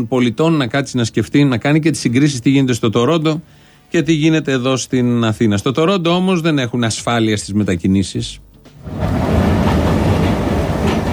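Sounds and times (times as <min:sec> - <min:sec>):
speech: 0:00.0 - 0:09.2
metro train running through Athens: 0:08.8 - 0:11.1
metro train wheels rattling: 0:08.8 - 0:11.1.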